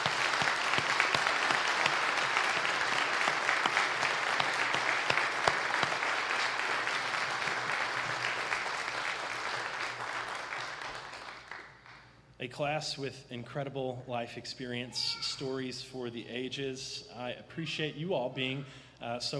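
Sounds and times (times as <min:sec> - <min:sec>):
large indoor crowd applauding graduates: 0:00.0 - 0:12.1
speech: 0:12.5 - 0:19.3.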